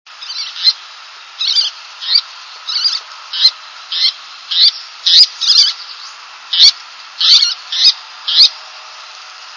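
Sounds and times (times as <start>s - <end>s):
faint steady hiss: 0.1s - 9.5s
least tern high raspy chattering calls: 0.2s - 8.6s.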